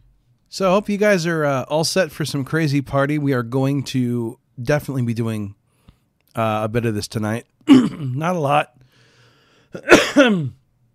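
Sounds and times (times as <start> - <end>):
speech: 0.5 - 5.6, 6.3 - 8.8, 9.7 - 10.6
person coughing close to the microphone: 7.7 - 8.2, 9.8 - 10.6.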